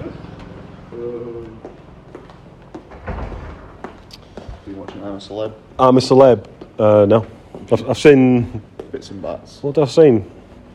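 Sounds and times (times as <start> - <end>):
mechanical whirring hum: 0.0 - 10.7
knocks and clunks: 2.8 - 4.1
door opening and closing: 2.8 - 4.2
heavy rumbling thud: 2.9 - 4.0
speech: 4.8 - 10.7.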